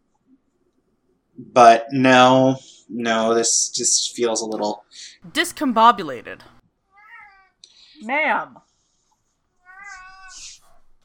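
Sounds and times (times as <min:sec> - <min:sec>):
speech: 0:01.4 - 0:06.6, 0:08.0 - 0:08.7
cat yowling loudly: 0:09.7 - 0:10.6.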